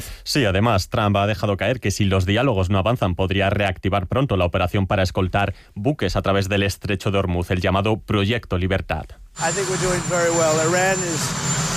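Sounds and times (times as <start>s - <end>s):
speech: 0.0s - 11.7s
helicopter engine roar: 9.4s - 11.7s.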